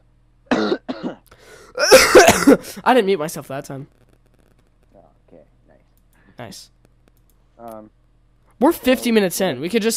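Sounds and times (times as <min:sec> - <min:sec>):
person coughing harshly: 0:00.5 - 0:02.8
speech: 0:02.8 - 0:04.1, 0:06.4 - 0:06.8, 0:08.6 - 0:09.9.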